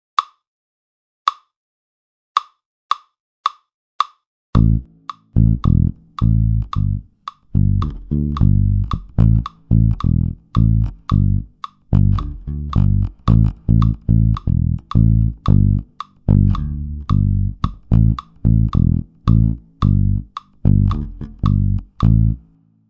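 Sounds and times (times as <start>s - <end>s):
reggae drum kit beat: 4.6s - 22.4s
reggae bass: 4.6s - 22.6s.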